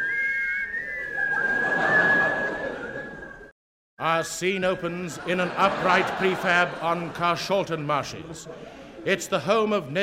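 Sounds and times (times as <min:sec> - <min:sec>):
person whistling a theme tune: 0:00.0 - 0:03.5
laughter: 0:01.0 - 0:03.5, 0:04.9 - 0:09.1
speech: 0:04.0 - 0:10.0.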